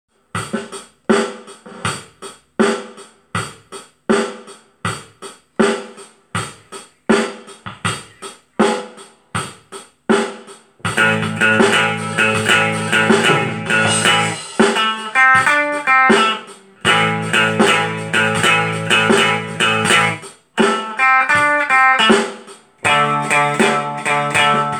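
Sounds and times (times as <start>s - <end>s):
drum backing track at 90 bpm: 0.1s - 24.7s
blues solo in E: 10.9s - 24.7s.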